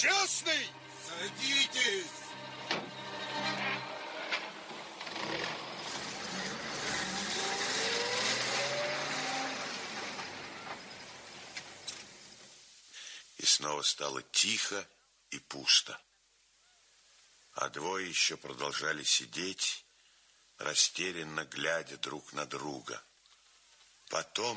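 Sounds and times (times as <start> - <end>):
speech: 0.0 - 2.9, 13.6 - 16.1, 17.6 - 19.8, 20.6 - 23.1, 24.1 - 24.5
car engine starting and revving as the car pulls away: 0.8 - 11.8
sharp clunks: 2.6 - 3.1.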